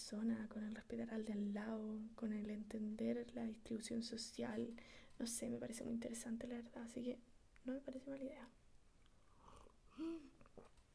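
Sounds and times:
speech: 0:00.0 - 0:08.6, 0:10.0 - 0:10.7
soft mouth and swallowing noises: 0:09.0 - 0:10.9
slurping sip of hot tea with a faint airy whistle: 0:09.2 - 0:10.9.

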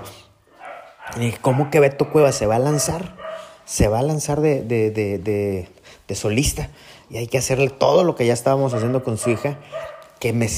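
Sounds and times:
dogs barking in short bursts: 0:00.4 - 0:03.8, 0:08.5 - 0:10.5
speech: 0:01.1 - 0:10.5.

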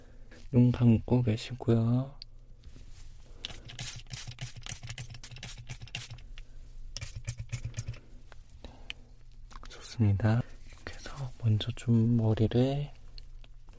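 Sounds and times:
speech: 0:00.5 - 0:02.2, 0:10.0 - 0:10.5, 0:11.4 - 0:13.0
protein hair treatment spray pumped onto a person's hair: 0:03.5 - 0:06.2.

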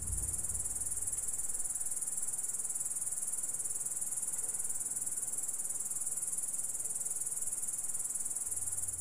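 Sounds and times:
cricket-like orthopteran stridulation trill: 0:00.0 - 0:09.0.

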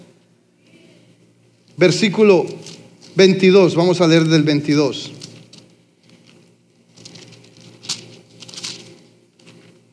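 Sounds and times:
low steady hum: 0:00.0 - 0:09.9
speech: 0:01.8 - 0:05.2
Bible pages being turned in a large room: 0:05.0 - 0:09.8
sharp Bible page flips: 0:07.0 - 0:09.7.

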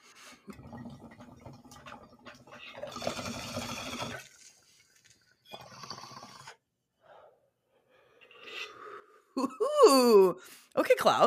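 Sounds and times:
bong water bubbling during a hit: 0:00.4 - 0:06.5
speech: 0:09.4 - 0:11.2.

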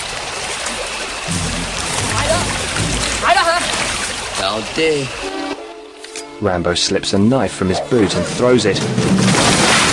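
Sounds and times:
two men splashing through river water: 0:00.0 - 0:05.2, 0:09.0 - 0:09.9
speech: 0:04.4 - 0:05.5, 0:06.4 - 0:09.5.

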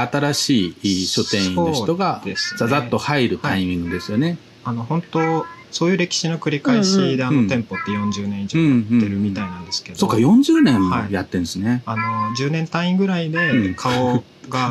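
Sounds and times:
speech: 0:00.0 - 0:14.7
two people chatting: 0:00.0 - 0:14.7
pet house cat meowing: 0:01.0 - 0:04.3, 0:05.2 - 0:05.7, 0:06.7 - 0:08.2, 0:09.3 - 0:09.8.

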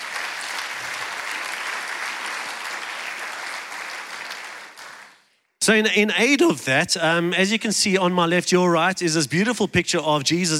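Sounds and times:
sustained applause from a sizable audience: 0:00.0 - 0:05.2
speech: 0:05.7 - 0:10.5.

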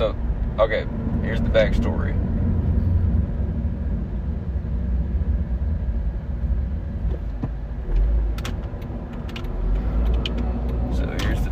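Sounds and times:
speech: 0:00.0 - 0:02.2
car driving past a building heard from inside the cabin: 0:00.0 - 0:11.5
road noise: 0:00.0 - 0:11.5
small clicks and rattles: 0:08.3 - 0:11.5.

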